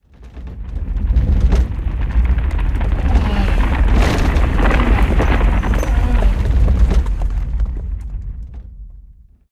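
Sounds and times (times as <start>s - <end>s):
stampede passing: 1.0s - 7.4s.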